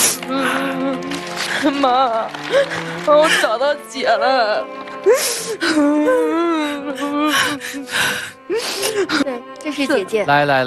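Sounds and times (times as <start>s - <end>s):
person crying and whimpering at a tearful reunion of sisters: 0.0s - 3.7s, 5.0s - 9.5s
speech: 1.6s - 10.6s.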